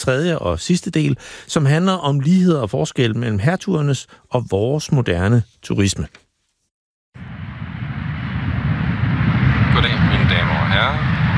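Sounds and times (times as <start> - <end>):
speech: 0.0 - 6.2
airplane cabin noise on a flight to Malaga: 7.2 - 11.3.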